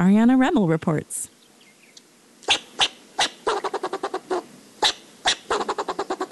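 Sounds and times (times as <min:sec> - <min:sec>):
speech: 0:00.0 - 0:01.4
fox squirrel barking and chattering: 0:02.4 - 0:06.2.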